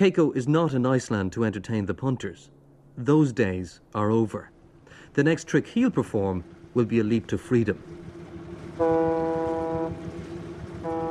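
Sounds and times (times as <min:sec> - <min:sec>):
speech: 0:00.0 - 0:08.0, 0:08.8 - 0:10.0
boat engine chugging leaving a harbour: 0:04.0 - 0:11.0
boat horn blast: 0:08.5 - 0:11.0.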